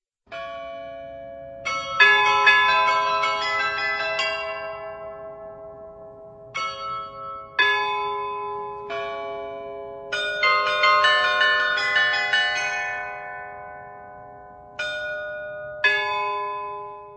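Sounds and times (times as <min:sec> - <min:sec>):
church carillon bells playing a melody: 0:00.3 - 0:17.1.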